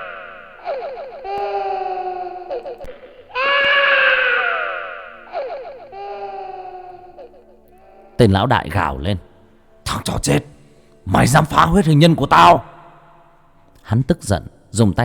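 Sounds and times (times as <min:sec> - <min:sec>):
child crying bitterly: 0:00.0 - 0:08.2
speech: 0:08.2 - 0:09.3, 0:09.9 - 0:12.7, 0:13.9 - 0:15.0.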